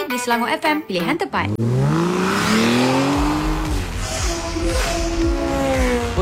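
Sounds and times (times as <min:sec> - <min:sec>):
speech: 0:00.1 - 0:02.8
motorcycle engine revving while weaving through traffic: 0:01.4 - 0:06.2.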